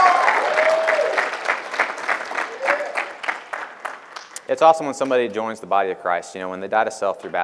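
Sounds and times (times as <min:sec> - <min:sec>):
audience applause: 0:00.0 - 0:04.4
speech: 0:04.5 - 0:07.4.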